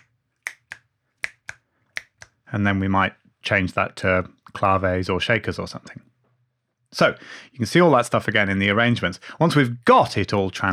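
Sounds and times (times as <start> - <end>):
finger clicks: 0.0 - 2.4
speech: 2.5 - 6.1, 6.9 - 10.7.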